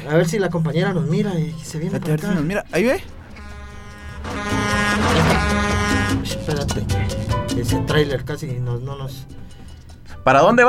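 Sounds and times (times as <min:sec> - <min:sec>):
speech: 0:00.0 - 0:03.2, 0:06.4 - 0:09.4, 0:10.2 - 0:10.6
bus horn blaring: 0:03.1 - 0:07.3.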